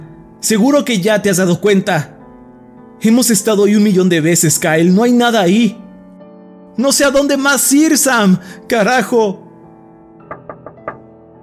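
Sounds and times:
speech: 0.4s - 2.2s, 3.0s - 5.8s, 6.8s - 9.4s
knocking on car window glass: 10.3s - 11.1s.

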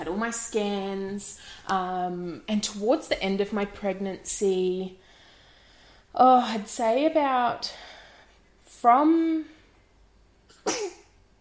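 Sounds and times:
speech: 0.0s - 5.0s, 6.1s - 7.9s, 8.8s - 9.6s
person sneezing: 10.5s - 11.1s.

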